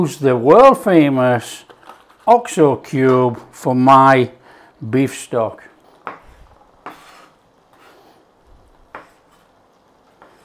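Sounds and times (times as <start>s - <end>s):
speech: 0.0s - 1.7s, 2.3s - 5.7s
knife scraping a wooden board: 6.0s - 8.2s, 8.9s - 10.4s.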